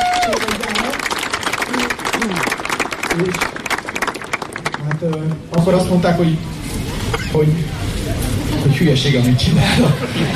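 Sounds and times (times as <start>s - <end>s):
audience applauding with loud clapping: 0.0s - 5.4s
speech: 3.2s - 3.5s, 5.0s - 6.6s, 7.3s - 7.8s, 8.6s - 10.3s
laughter: 8.0s - 10.3s.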